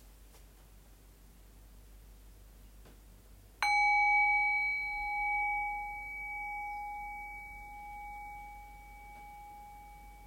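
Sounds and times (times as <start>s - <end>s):
single bell strike ringing: 3.6s - 10.2s.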